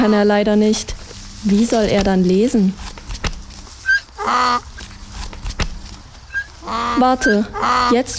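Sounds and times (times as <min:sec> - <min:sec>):
speech: 0:00.0 - 0:02.9, 0:04.2 - 0:04.7, 0:06.7 - 0:08.1
donkey braying: 0:03.8 - 0:04.7, 0:06.2 - 0:08.1.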